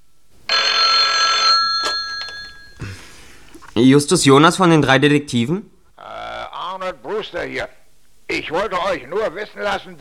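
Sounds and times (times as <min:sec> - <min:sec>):
loud telephone bell ringing: 0:00.5 - 0:02.8
speech: 0:03.8 - 0:05.7, 0:07.2 - 0:09.9.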